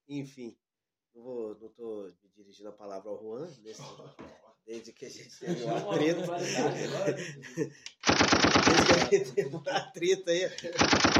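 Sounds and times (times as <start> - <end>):
speech: 0.1 - 0.6, 1.2 - 11.1
laughter: 3.7 - 11.0
rapid burst of automatic gunfire: 8.0 - 9.1, 10.8 - 11.1.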